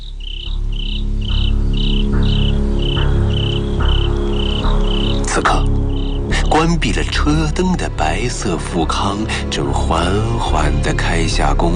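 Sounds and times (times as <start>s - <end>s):
crickets chirping on a hillside at night: 0.0s - 6.9s
speech: 6.6s - 11.7s.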